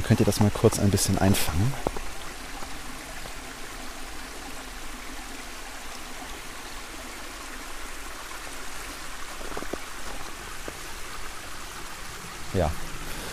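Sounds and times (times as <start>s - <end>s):
small brook babbling through a cutting down to a reservoir: 0.0s - 13.3s
speech: 0.1s - 2.0s, 12.6s - 12.8s.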